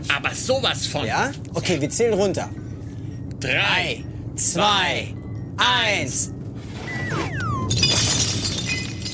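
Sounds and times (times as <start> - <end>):
speech: 0.0 - 2.6, 3.4 - 6.4
whistling tones sliding downward: 6.7 - 7.8
glass bottles hurled through a hatch shattering in a cargo hold: 7.4 - 9.1.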